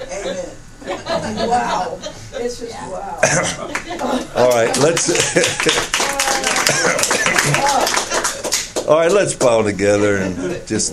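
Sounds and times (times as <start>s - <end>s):
people chuckling: 0.0s - 2.3s, 3.2s - 8.5s
speech: 0.2s - 8.3s, 8.9s - 10.9s
overlapping voices: 3.2s - 9.6s
audience clapping: 3.7s - 9.6s.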